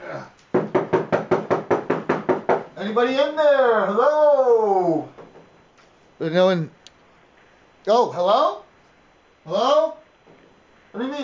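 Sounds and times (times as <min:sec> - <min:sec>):
firm loud knocking on a hotel room door: 0:00.5 - 0:02.7
speech: 0:02.8 - 0:05.1, 0:06.2 - 0:06.8, 0:07.9 - 0:08.6, 0:09.5 - 0:10.0, 0:10.9 - 0:11.2.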